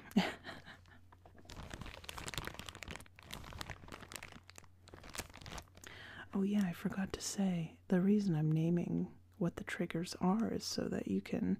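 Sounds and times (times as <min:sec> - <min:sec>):
plastic bag holding cough medicine crinkling: 0:01.3 - 0:06.0
speech: 0:06.3 - 0:11.5.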